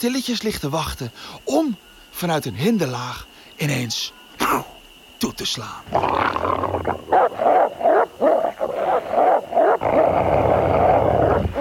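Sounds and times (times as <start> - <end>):
speech: 0.0 - 7.5
several wolves howling together: 6.2 - 11.5.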